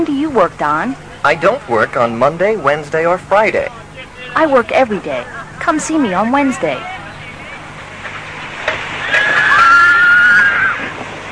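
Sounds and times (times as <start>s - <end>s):
speech: 0.0s - 3.8s, 4.4s - 7.0s
horse whinnying at a stable: 9.0s - 11.0s.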